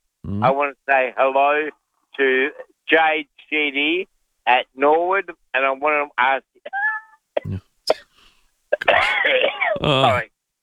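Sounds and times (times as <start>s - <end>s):
speech: 0.4s - 8.0s, 8.8s - 10.3s
caller coughing sharply over a phone line: 6.7s - 8.1s, 8.7s - 10.3s
long strained groaning vocal sound over a phone line: 7.4s - 7.6s, 9.8s - 10.3s.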